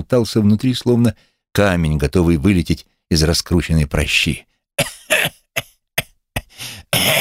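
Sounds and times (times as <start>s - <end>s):
speech: 0.0s - 5.4s
violent coughing fit from someone lying in a hanging bunk: 4.8s - 7.1s.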